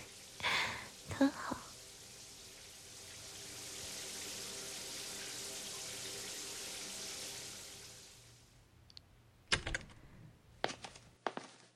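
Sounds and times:
running water from a shower: 0.0s - 8.6s
speech: 1.2s - 1.4s.

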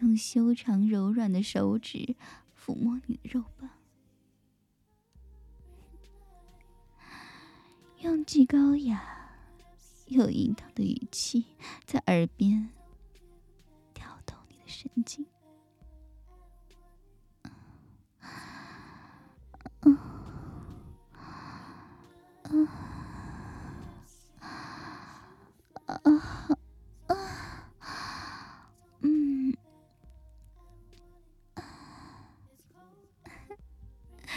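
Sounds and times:
speech: 0.2s - 3.8s, 8.0s - 9.2s, 10.1s - 12.8s, 14.7s - 15.3s, 19.8s - 20.1s, 26.0s - 26.5s
close intimate breathing at the ear: 2.2s - 2.6s, 5.6s - 8.0s, 8.7s - 10.1s, 11.5s - 12.0s, 17.4s - 32.6s, 33.2s - 34.3s.

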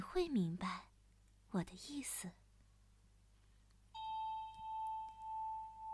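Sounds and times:
speech: 0.1s - 0.9s, 1.5s - 2.4s
small bell struck and ringing: 4.0s - 5.9s.

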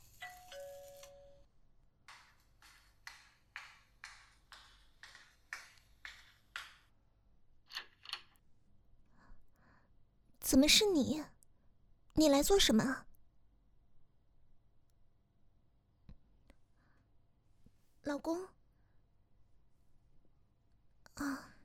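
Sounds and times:
doorbell with bright electronic chime: 0.2s - 1.5s
speech: 10.5s - 11.4s, 12.2s - 13.1s, 18.2s - 18.6s.

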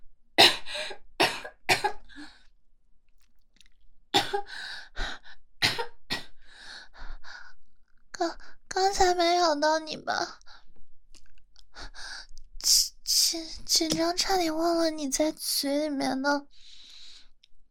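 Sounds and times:
harsh uncontrollable coughing fit with raspy breathy coughs: 0.4s - 2.1s, 4.2s - 4.5s, 5.6s - 6.3s
speech: 9.2s - 10.4s, 13.3s - 16.6s.

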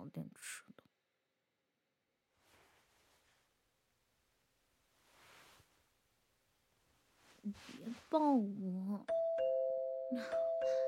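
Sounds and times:
speech: 0.1s - 0.7s, 7.4s - 9.2s, 10.1s - 10.8s
electronic doorbell chime ringing: 9.1s - 10.8s.

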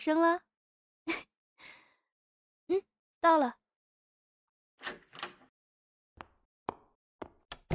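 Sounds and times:
speech: 0.0s - 1.2s, 2.7s - 3.6s
office door rustling rattle: 4.8s - 5.5s
office door sharp wooden clunks and knocks opening and shutting: 4.8s - 5.5s, 7.6s - 7.7s.

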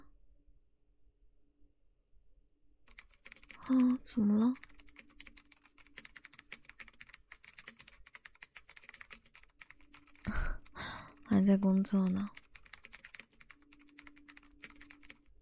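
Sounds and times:
rapid typing on a computer keyboard: 2.9s - 15.3s
speech: 3.7s - 4.7s, 11.4s - 12.4s.

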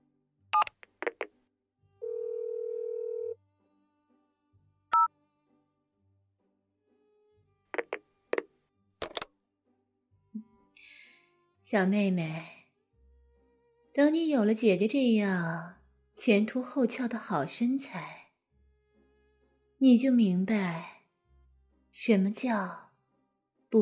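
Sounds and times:
phone keypad tones beeping: 0.6s - 1.2s
steady held phone tone: 2.0s - 3.4s
speech: 11.7s - 12.6s, 14.0s - 18.2s, 19.8s - 20.9s, 22.0s - 22.8s.

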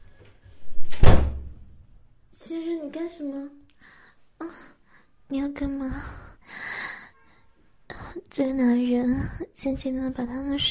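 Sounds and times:
door being shut with a heavy low thud: 0.8s - 1.7s
speech: 2.5s - 3.6s, 5.3s - 6.6s, 8.4s - 10.6s.

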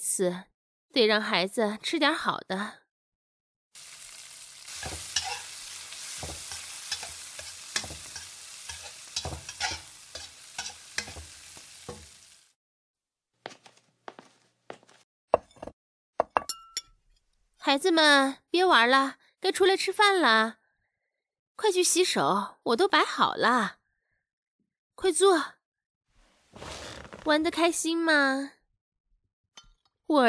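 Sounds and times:
speech: 0.1s - 2.8s, 17.7s - 20.6s, 21.6s - 23.8s, 25.0s - 25.6s, 26.6s - 28.6s
food frying in a pan: 3.8s - 12.6s
scraping stir strokes in a pan: 4.7s - 12.2s
utensils and dishes clinking and knocking: 4.7s - 12.2s.

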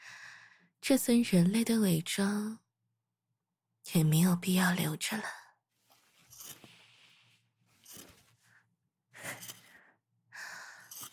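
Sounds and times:
speech: 0.9s - 2.6s, 3.9s - 5.4s
soft fabric rustling: 5.7s - 8.5s
scissors snipping through shirt fabric: 9.2s - 9.7s, 10.9s - 11.1s.

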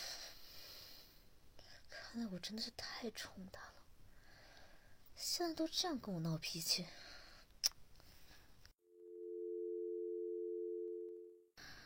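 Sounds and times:
speech: 2.1s - 3.8s, 5.2s - 7.1s
steady electronic phone ringback tone: 9.0s - 11.4s.

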